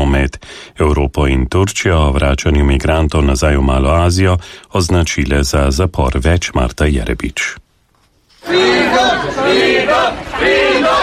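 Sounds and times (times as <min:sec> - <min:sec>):
speech: 0:00.1 - 0:07.6, 0:08.4 - 0:11.0
large crowd chanting freedom at the Moria refugee centre: 0:08.4 - 0:11.0.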